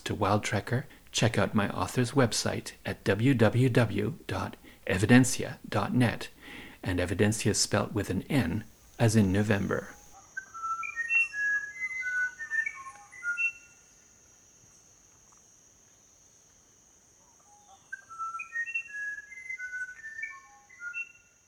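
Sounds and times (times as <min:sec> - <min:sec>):
speech: 0:00.0 - 0:10.0
steady high insect hum: 0:00.0 - 0:10.5, 0:13.6 - 0:17.8
musician wren singing on the Purus River, Amazonas, Brazil: 0:09.9 - 0:13.8, 0:17.9 - 0:21.4.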